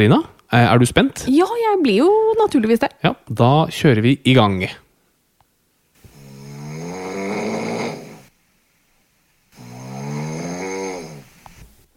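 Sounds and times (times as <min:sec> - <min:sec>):
speech: 0:00.0 - 0:04.8
person snoring: 0:06.0 - 0:08.3, 0:09.5 - 0:11.6.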